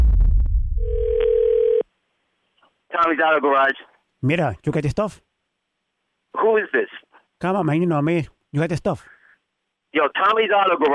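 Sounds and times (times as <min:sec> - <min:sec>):
low rumbling noise: 0:00.0 - 0:01.2
telephone dial tone as a call begins: 0:00.8 - 0:01.8
speech: 0:03.1 - 0:05.2, 0:06.3 - 0:09.1, 0:09.9 - 0:10.9.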